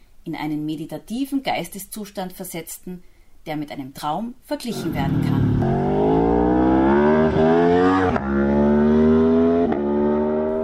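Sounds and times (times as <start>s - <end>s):
speech: 0.2s - 6.2s
deep burbling modern motorcycle engine pulling hard through gear changes: 4.7s - 10.6s.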